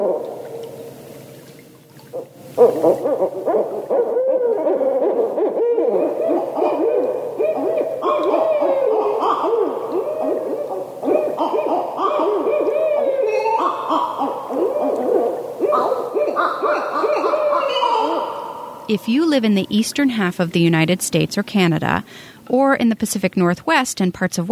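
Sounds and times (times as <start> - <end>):
speech: 2.2 - 4.6, 18.9 - 24.4
barred owl hooting: 2.5 - 20.6.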